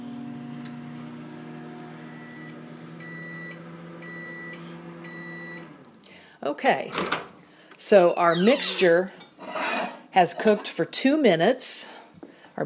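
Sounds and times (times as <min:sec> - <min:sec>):
microwave oven humming with a low droning whir: 0:00.0 - 0:06.0
speech: 0:06.4 - 0:09.2, 0:10.2 - 0:12.0.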